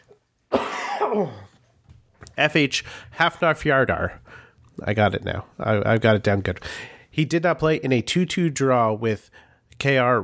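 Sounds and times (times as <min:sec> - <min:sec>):
loud harsh throaty cough: 0:00.5 - 0:01.6
speech: 0:01.1 - 0:01.5, 0:02.4 - 0:10.2.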